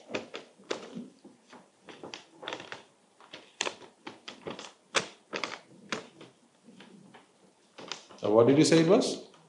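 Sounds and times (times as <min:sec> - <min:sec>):
sheet of paper being handled with crinkles and rustling snaps: 0:00.1 - 0:08.3
speech: 0:08.3 - 0:09.3.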